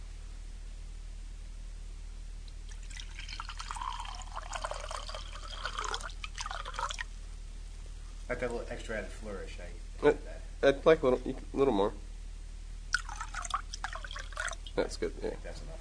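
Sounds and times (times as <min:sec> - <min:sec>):
wine pouring into a glass: 0:02.7 - 0:07.1, 0:12.9 - 0:14.8
speech: 0:08.3 - 0:12.0, 0:14.8 - 0:15.8.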